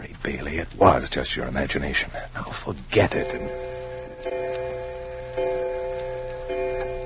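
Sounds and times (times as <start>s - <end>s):
speech: 0.2s - 4.4s
clock ticking: 3.0s - 7.0s
sustained humming musical drone: 3.2s - 7.0s.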